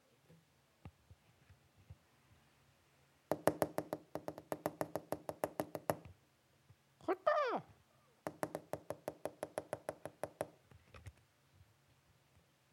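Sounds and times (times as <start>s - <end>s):
woodpecker drumming on wood: 3.3s - 6.1s, 8.2s - 10.6s.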